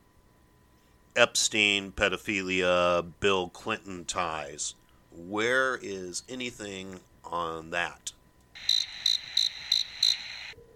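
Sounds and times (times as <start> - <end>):
speech: 1.2 - 8.7
crickets chirping: 8.6 - 10.6.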